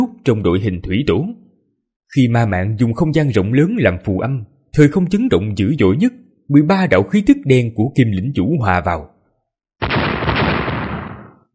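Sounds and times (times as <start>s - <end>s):
speech: 0.2s - 1.4s, 2.1s - 9.1s
huge explosion in a fantasy battle: 9.8s - 11.5s.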